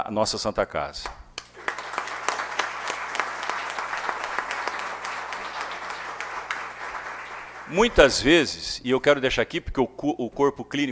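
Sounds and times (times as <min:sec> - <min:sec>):
speech: 0:00.0 - 0:01.2, 0:07.7 - 0:10.9
crowd applauding: 0:01.4 - 0:08.5.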